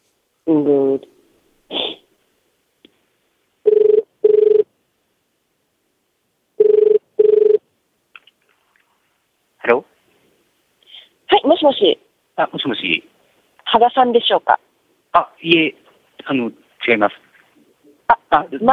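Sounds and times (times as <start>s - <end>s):
speech: 0.5s - 1.1s, 11.6s - 17.3s, 18.3s - 18.7s
ringback tone of an outgoing international call from New York to Japan: 3.7s - 4.7s, 6.6s - 7.6s.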